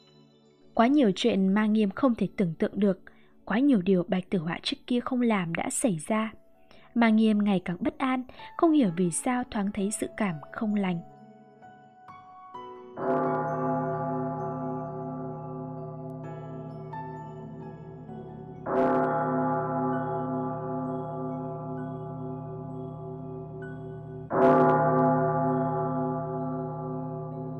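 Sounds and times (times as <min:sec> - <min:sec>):
speech: 0:00.8 - 0:11.1
large bell tolling in a great hall: 0:13.0 - 0:27.5.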